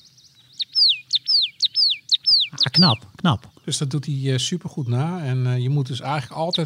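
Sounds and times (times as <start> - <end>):
marsh tit song: 0.0 - 6.6
speech: 2.5 - 6.6.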